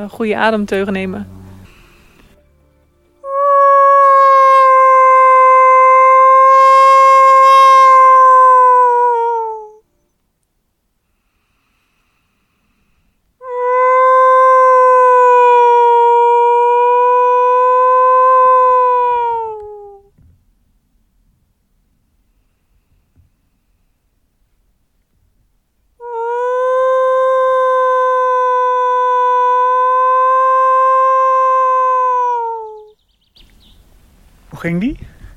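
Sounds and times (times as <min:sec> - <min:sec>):
speech: 0:00.0 - 0:01.4
person imitating a wolf howl aimed at wolves: 0:03.2 - 0:09.8, 0:13.4 - 0:20.1, 0:26.0 - 0:32.9.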